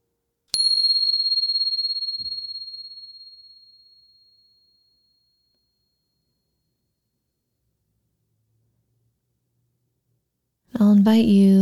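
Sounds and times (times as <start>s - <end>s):
meditation bell ringing: 0.6s - 5.4s
speech: 10.7s - 11.6s.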